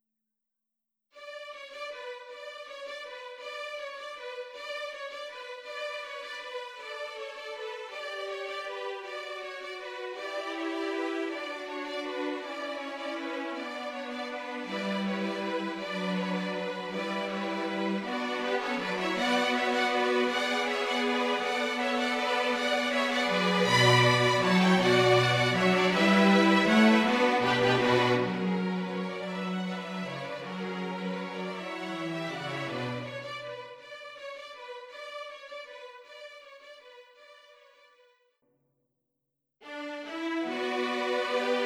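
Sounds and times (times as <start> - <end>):
string quartet playing carols: 6.0 - 34.1, 39.7 - 41.6.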